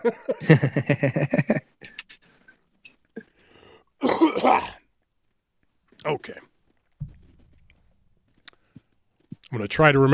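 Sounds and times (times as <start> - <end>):
speech: 0.0 - 2.0, 9.6 - 10.1
laughter: 0.0 - 2.2
person clearing throat: 4.0 - 4.8.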